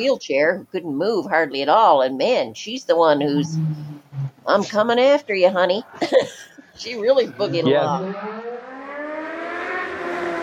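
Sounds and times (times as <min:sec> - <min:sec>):
speech: 0:00.0 - 0:08.5
motorcycles passing on a busy city street corner at night: 0:03.1 - 0:10.4.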